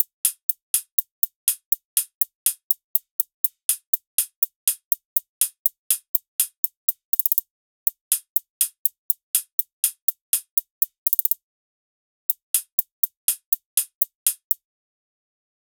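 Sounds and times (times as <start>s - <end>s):
hi-hat loop: 0.0s - 11.4s, 12.3s - 14.6s.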